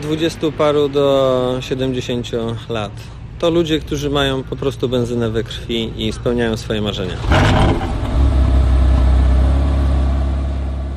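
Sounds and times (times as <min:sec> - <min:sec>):
speech: 0:00.0 - 0:08.0
Porsche car engine revving: 0:07.0 - 0:10.9.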